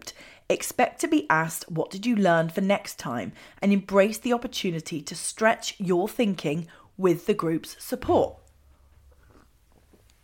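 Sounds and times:
speech: 0.5 - 8.4
person sipping coffee: 9.0 - 10.0
soft slurping and swallowing mouth noises: 9.1 - 9.8.

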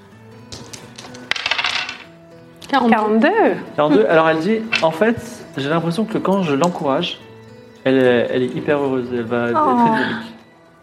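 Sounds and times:
dice rattling on a hard surface: 0.5 - 2.1
speech: 2.7 - 7.2, 7.8 - 10.3.

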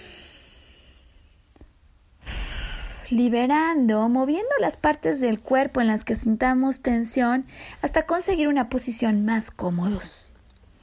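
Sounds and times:
person inhaling and exhaling deeply during guided relaxation: 0.0 - 1.5, 2.2 - 3.1
speech: 3.1 - 10.4.

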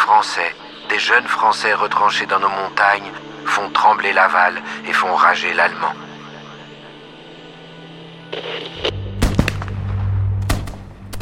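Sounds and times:
speech: 0.1 - 6.0
rifle shots: 9.2 - 10.9.

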